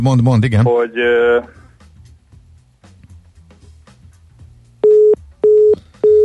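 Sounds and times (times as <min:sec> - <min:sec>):
speech: 0:00.0 - 0:01.6
telephone busy tone after a dropped call: 0:04.8 - 0:06.2.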